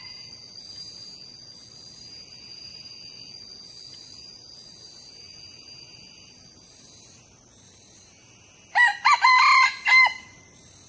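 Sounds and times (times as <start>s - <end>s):
young male red junglefowl crowing: 8.8s - 10.4s.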